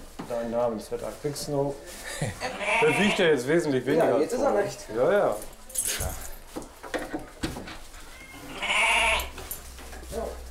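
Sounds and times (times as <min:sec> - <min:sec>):
speech: 0:00.3 - 0:06.2
goats bleating in a barn: 0:02.4 - 0:03.4, 0:08.0 - 0:09.4
clinks and shuffling noises of a barn: 0:03.7 - 0:10.5.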